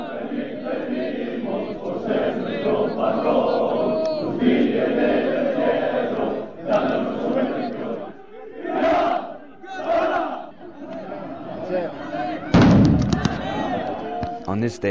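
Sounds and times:
large crowd roaring and chanting: 0:00.0 - 0:14.6
signal rocket bursting with a loud sharp bang over a crowd: 0:12.5 - 0:13.5.

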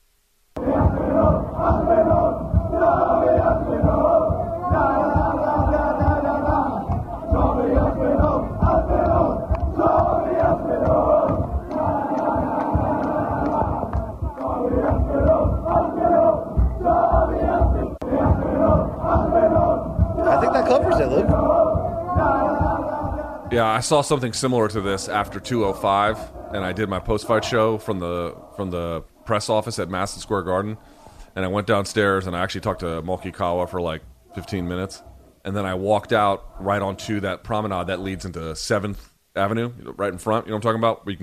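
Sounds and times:
crowd shouting: 0:00.6 - 0:23.6, 0:25.2 - 0:28.6
large street crowd chanting and cheering in London at a UFC event: 0:00.6 - 0:30.8, 0:34.2 - 0:35.4
speech: 0:23.8 - 0:41.2.

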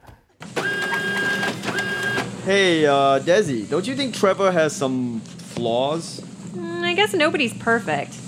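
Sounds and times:
photocopier whirring and scanning a passport: 0:00.4 - 0:03.6
speech: 0:02.4 - 0:08.2.

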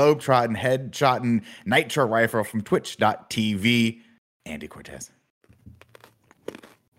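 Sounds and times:
speech: 0:00.0 - 0:05.2
person biting into a raw carrot: 0:05.4 - 0:06.9.

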